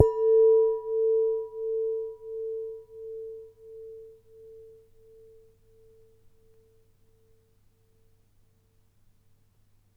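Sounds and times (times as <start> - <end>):
soft hit on a large wine glass: 0.0 - 1.4.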